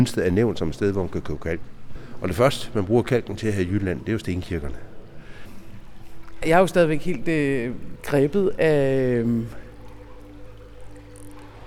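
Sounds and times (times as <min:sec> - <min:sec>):
speech: 0:00.0 - 0:04.9, 0:06.4 - 0:09.6
water trickling and splashing inside a limestone mine in Jutland: 0:00.0 - 0:11.6
low droning hum: 0:04.7 - 0:11.6.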